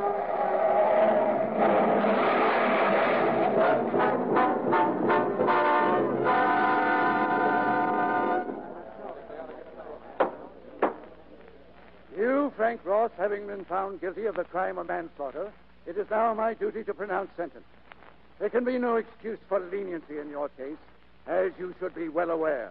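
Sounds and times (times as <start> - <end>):
tires screeching: 0.0 - 4.2
loud blaring horn-like tones: 0.0 - 8.7
sharp knocks: 10.2 - 11.1
speech: 13.0 - 17.8, 18.4 - 22.6.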